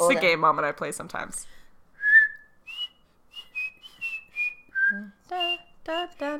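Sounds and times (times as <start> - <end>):
speech: 0.1 - 1.6, 4.9 - 6.3
whistled TV theme song: 2.0 - 5.8.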